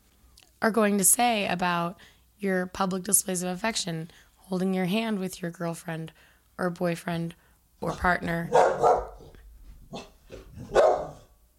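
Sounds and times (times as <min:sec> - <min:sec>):
speech: 0:00.6 - 0:09.1
dog barking: 0:08.5 - 0:11.3.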